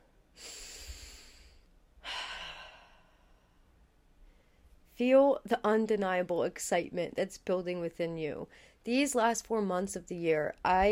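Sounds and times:
slow deep breath: 0:00.4 - 0:04.8
speech: 0:05.0 - 0:10.8.

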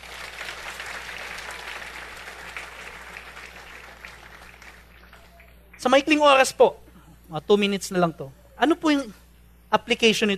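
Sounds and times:
congregation applauding during a church service: 0:00.0 - 0:06.1
faint low hum: 0:00.0 - 0:10.3
speech: 0:05.8 - 0:10.3.

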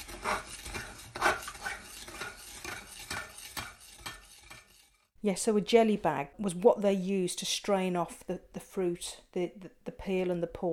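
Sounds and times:
spoon stirring sugar in a fruit mixture for a shrub drink: 0:00.0 - 0:05.1
speech: 0:05.2 - 0:10.7.

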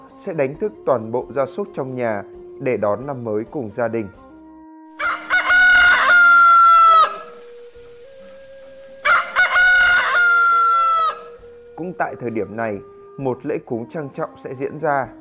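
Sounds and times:
speech: 0:00.2 - 0:04.3, 0:11.8 - 0:15.2
rooster crowing at dawn: 0:05.0 - 0:12.0.

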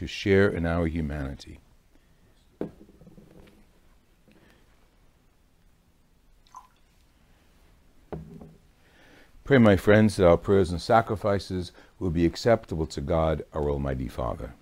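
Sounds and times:
speech: 0:00.0 - 0:01.6, 0:09.5 - 0:14.6
water trickling into wine in a chalice during a church liturgy: 0:06.4 - 0:07.1.

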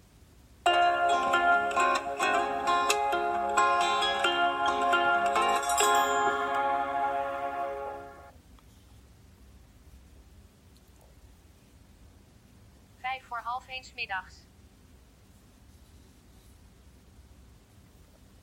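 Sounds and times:
mobile phone startup jingle with chiming bell-like notes: 0:00.7 - 0:08.3.

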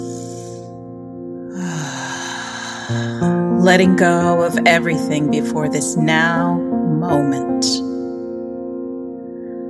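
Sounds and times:
long airy deep breaths taken to center oneself: 0:01.5 - 0:03.3
speech: 0:02.9 - 0:07.9.

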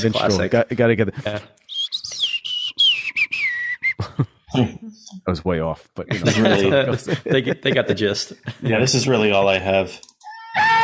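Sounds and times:
speech: 0:00.0 - 0:01.6, 0:04.2 - 0:10.1
person whistling a jaunty tune imitating an animated film melody: 0:01.7 - 0:04.1
laughter: 0:04.0 - 0:04.8, 0:06.1 - 0:09.1.

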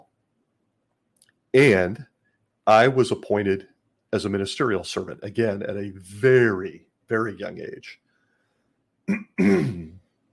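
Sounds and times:
speech: 0:01.5 - 0:02.1, 0:02.7 - 0:08.0, 0:09.1 - 0:10.0
person clearing throat: 0:09.1 - 0:10.0.

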